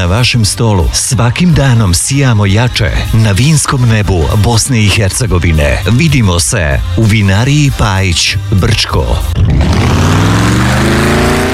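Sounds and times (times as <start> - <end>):
speech: 0.0 - 11.1
powerful car engine revving: 9.2 - 11.5.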